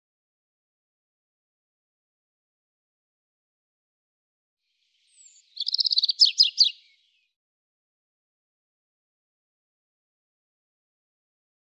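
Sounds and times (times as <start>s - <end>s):
European robin song: 4.7s - 7.4s.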